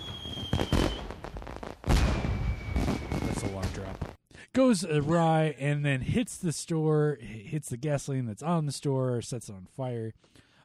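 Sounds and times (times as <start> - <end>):
fireworks bursting: 0.0 - 4.2
heavy booming firework blast: 1.9 - 4.2
speech: 4.6 - 10.6.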